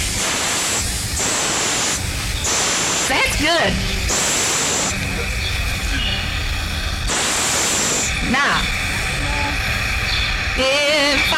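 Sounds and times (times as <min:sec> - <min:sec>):
several people hissing imitating a snake: 0:00.0 - 0:11.3
speech: 0:03.4 - 0:04.2, 0:08.3 - 0:08.7, 0:10.6 - 0:11.3.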